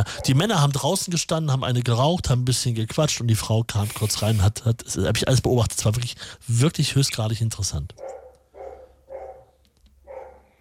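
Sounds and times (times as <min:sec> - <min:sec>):
dog barking: 0:00.0 - 0:00.4, 0:08.0 - 0:10.5
speech: 0:00.0 - 0:08.2.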